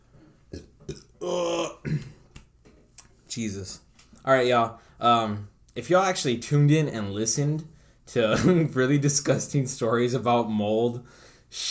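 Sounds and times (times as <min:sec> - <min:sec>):
loud drawn-out burp: 0:00.5 - 0:02.2
short throaty clicks and gulps: 0:00.5 - 0:03.2
speech: 0:01.2 - 0:01.8, 0:03.4 - 0:11.6.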